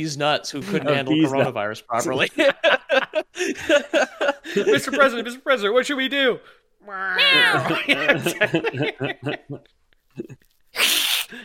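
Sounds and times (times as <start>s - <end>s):
speech: 0.0s - 11.4s
laughter: 0.6s - 5.3s, 7.2s - 10.4s
person imitating a big bushy cat's meow: 6.8s - 7.7s.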